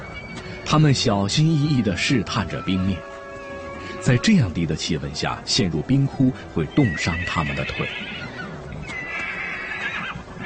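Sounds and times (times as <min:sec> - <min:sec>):
steady noisy background: 0:00.0 - 0:10.4
speech: 0:00.7 - 0:03.1, 0:04.0 - 0:08.2
ponies whinnying at a frozen stream: 0:06.7 - 0:10.4.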